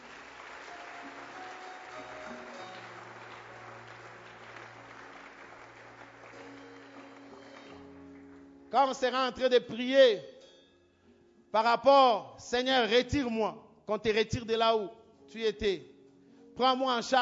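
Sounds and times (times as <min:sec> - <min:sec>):
congregation applauding during a church service: 0:00.0 - 0:09.4
speech: 0:08.7 - 0:10.3, 0:11.5 - 0:15.9, 0:16.6 - 0:17.2.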